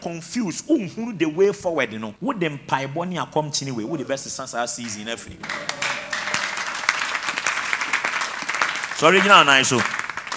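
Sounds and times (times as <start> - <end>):
speech: 0.0 - 5.9, 9.0 - 10.0
laughter: 3.4 - 10.3
audience clapping and applauding: 4.8 - 10.3.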